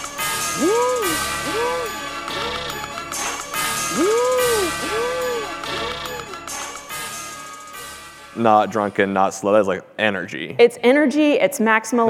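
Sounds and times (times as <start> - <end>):
swooping pitch-bending synth notes: 0.2 - 7.2
mid-2000s trap song beat: 0.5 - 6.9
speech: 8.4 - 12.0.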